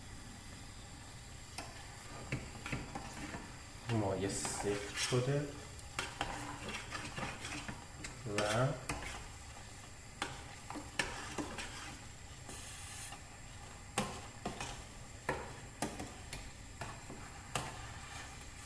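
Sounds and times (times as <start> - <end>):
eggs frying in a pan on top of hot potatoes: 0.0 - 18.6
speech: 3.9 - 5.6, 8.3 - 8.9.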